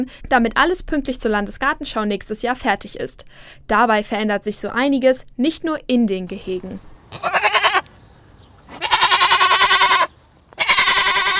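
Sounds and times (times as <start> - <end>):
speech: 0.0 - 7.4
goats bleating: 7.1 - 7.9, 8.7 - 11.3.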